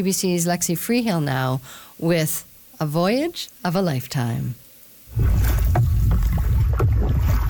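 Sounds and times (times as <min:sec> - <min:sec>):
speech: 0:00.0 - 0:05.6
canoe paddles splashing in river water: 0:05.1 - 0:07.4.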